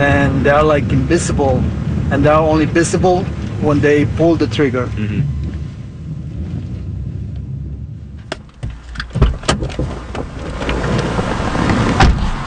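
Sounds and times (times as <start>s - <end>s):
speech: 0.0s - 5.4s
broad wash of city traffic noise: 0.0s - 12.4s
car engine and road rumble driving through city streets: 0.0s - 12.4s
clicks and rattles: 8.2s - 11.3s.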